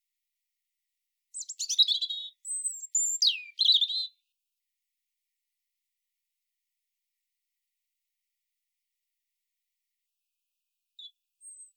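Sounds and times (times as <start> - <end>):
European robin Erithacus rubecula song: 1.3 - 4.3, 11.0 - 11.7.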